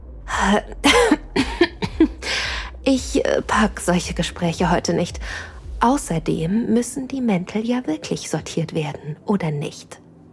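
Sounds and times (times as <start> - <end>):
speech: 0.4 - 1.5, 2.9 - 10.0
person coughing: 0.8 - 2.7.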